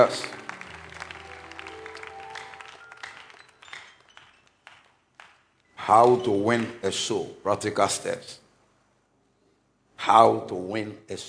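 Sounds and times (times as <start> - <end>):
speech: 0.0 - 0.4, 5.9 - 8.4, 10.0 - 11.2
congregation clapping hands for the choir: 0.0 - 6.9.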